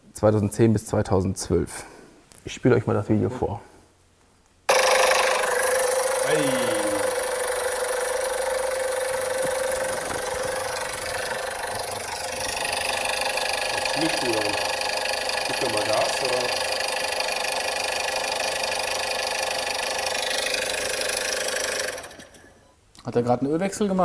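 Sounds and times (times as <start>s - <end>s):
speech: 0.2s - 3.7s, 14.0s - 14.6s, 23.1s - 24.0s
Golf 6 1.2-litre petrol engine idling: 4.7s - 22.3s.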